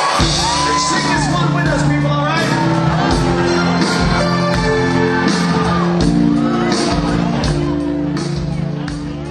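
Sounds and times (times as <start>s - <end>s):
concert crowd clapping: 0.0s - 1.2s, 3.1s - 5.8s, 6.9s - 9.2s
large concert crowd screaming and cheering for an encore: 0.0s - 9.2s.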